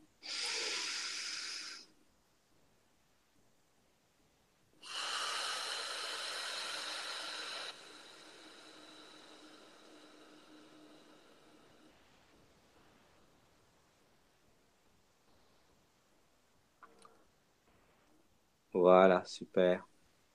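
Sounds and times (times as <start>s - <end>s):
long airy exhale: 0.0s - 2.0s, 4.8s - 13.3s
loud breath in through the nose: 0.2s - 1.9s, 4.8s - 13.2s
speech: 18.8s - 20.3s.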